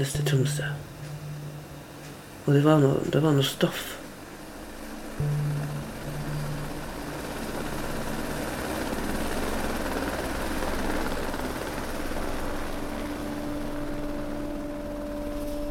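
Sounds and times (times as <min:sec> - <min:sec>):
speech: 0:00.0 - 0:01.0, 0:02.4 - 0:04.0, 0:05.2 - 0:05.9
helicopter engine starting and rotor drone: 0:04.6 - 0:15.6.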